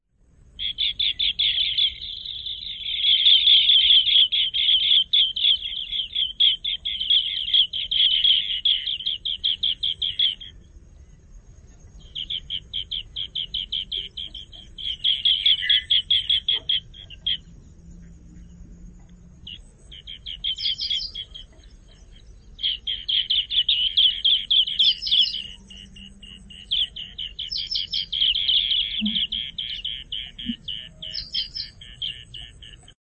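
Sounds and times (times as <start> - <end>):
green bee eater birds: 0.3 - 33.0.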